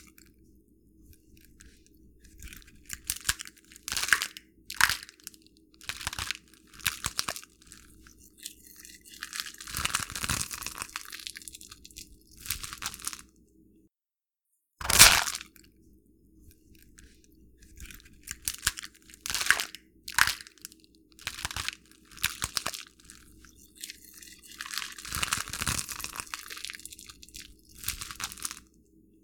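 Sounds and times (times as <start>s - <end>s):
egg shells cracked mimicking bone breaking: 1.4s - 13.3s, 17.6s - 28.7s.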